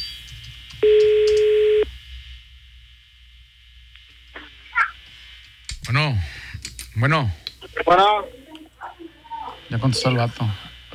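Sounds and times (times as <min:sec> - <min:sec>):
ringback tone on an outgoing phone call: 0:00.8 - 0:01.8
speech: 0:07.0 - 0:08.4, 0:09.7 - 0:10.7.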